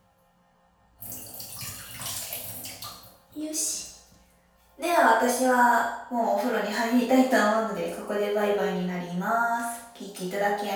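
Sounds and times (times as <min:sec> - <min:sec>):
water rushing and splashing flushing urine from a plastic bottle: 0:01.2 - 0:03.0
speech: 0:05.1 - 0:10.7.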